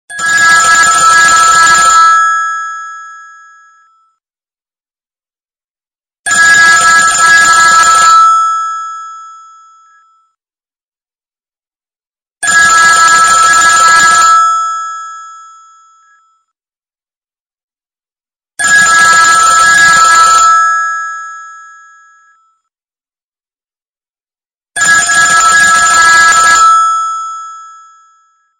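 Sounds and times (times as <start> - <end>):
old American phone ringtone on Android: 0.1 - 4.2, 6.3 - 10.4, 12.4 - 16.6, 18.6 - 22.7, 24.8 - 28.5.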